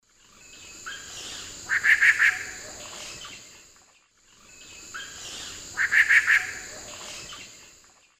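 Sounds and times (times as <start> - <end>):
Querula purpurata calling in the Eastern Lowlands of South America: 0.6 - 3.4, 4.4 - 7.6.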